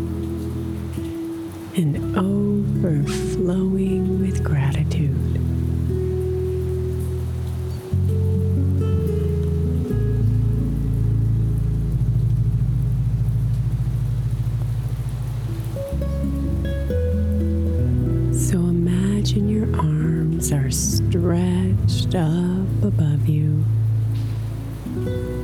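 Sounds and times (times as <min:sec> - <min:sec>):
soft sustained musical drone with low chords: 0:00.0 - 0:25.4
steady rain pattering on a surface: 0:00.0 - 0:25.4
speech: 0:01.8 - 0:05.2.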